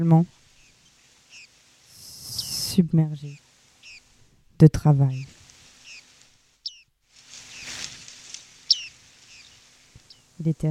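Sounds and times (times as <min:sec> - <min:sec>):
speech: 0:00.0 - 0:00.4, 0:02.8 - 0:03.4, 0:04.6 - 0:05.4, 0:10.4 - 0:10.6
soft noise: 0:00.0 - 0:10.6
bearded reedling giving short high metallic calls: 0:00.6 - 0:04.1, 0:05.1 - 0:06.9, 0:07.5 - 0:07.8, 0:08.6 - 0:10.3.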